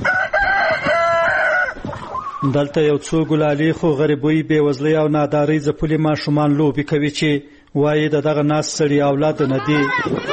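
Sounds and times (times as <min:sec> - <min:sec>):
rooster crowing in a house yard: 0:00.0 - 0:02.4
speech: 0:02.4 - 0:10.3.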